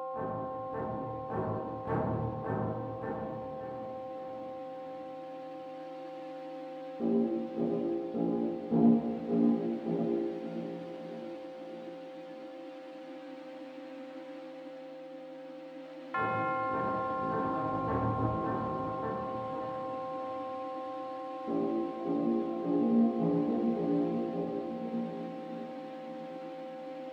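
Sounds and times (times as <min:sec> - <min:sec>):
ambient brass music: 0:00.2 - 0:05.3, 0:06.9 - 0:12.1, 0:16.2 - 0:26.9.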